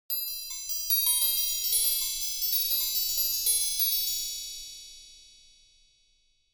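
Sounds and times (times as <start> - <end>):
magic chime: 0.1 - 4.9.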